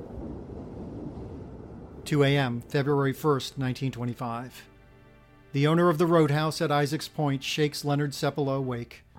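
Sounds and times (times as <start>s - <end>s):
deep steady roll of thunder in a fierce storm on the Norton Sound: 0.0s - 4.0s
speech: 2.1s - 4.7s, 5.5s - 9.0s.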